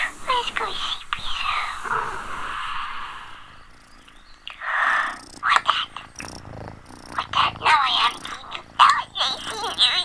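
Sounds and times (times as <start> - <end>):
cat purring: 0.0 - 10.0.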